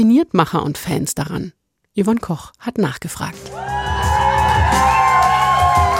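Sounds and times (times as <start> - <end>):
speech: 0.0 - 3.8
angry crowd shouting and yelling: 3.5 - 5.9.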